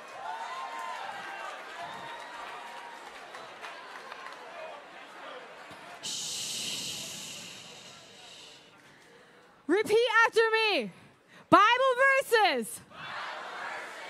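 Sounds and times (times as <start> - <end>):
audience clapping: 0.0 - 6.0
whoops from the audience: 0.1 - 3.3
hissing burst of noise: 6.0 - 8.7
speech: 9.8 - 12.8.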